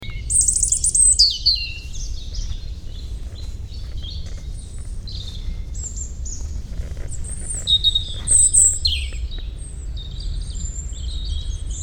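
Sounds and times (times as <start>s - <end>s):
European robin Erithacus rubecula singing tinkling warbled phrases: 0.0s - 11.8s
low background rumble: 0.0s - 11.8s.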